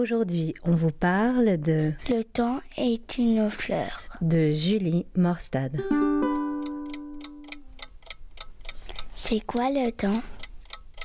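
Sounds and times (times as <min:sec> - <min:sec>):
speech: 0:00.0 - 0:06.2, 0:09.3 - 0:10.4
clock ticking: 0:02.0 - 0:03.7, 0:06.3 - 0:11.0.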